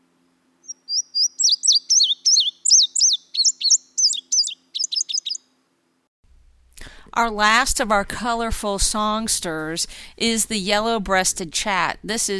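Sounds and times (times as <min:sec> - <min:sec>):
indigo bunting singing: 0:00.6 - 0:05.5, 0:12.2 - 0:12.3
speech: 0:07.2 - 0:12.3.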